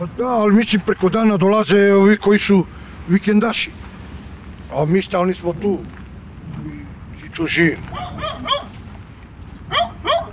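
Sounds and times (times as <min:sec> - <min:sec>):
speech: 0:00.0 - 0:03.9, 0:04.7 - 0:06.0, 0:07.4 - 0:08.5
dog barking sharply: 0:07.9 - 0:08.8, 0:09.7 - 0:10.3.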